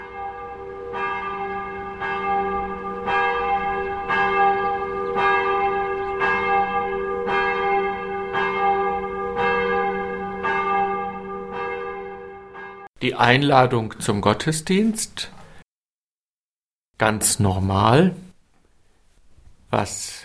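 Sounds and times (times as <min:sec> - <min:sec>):
church bells ringing in a peal: 0:00.0 - 0:12.9
speech: 0:13.0 - 0:15.4, 0:17.0 - 0:18.2, 0:19.7 - 0:20.2.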